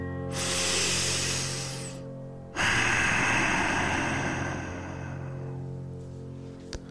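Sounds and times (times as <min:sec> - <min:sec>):
closed-mouth throat breathing: 0:00.3 - 0:05.6.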